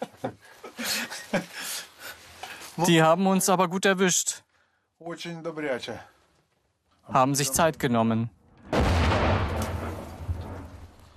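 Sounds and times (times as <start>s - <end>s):
laughter: 0.0s - 1.9s
speech: 2.8s - 4.4s, 5.1s - 6.2s, 7.1s - 8.9s
heavy artillery fire booming: 8.6s - 11.1s.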